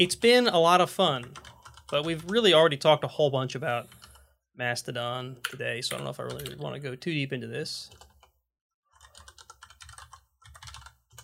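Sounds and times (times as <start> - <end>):
speech: 0.0 - 4.0, 4.6 - 8.1
typing on a computer keyboard: 1.3 - 1.9, 7.9 - 8.3, 8.9 - 11.2.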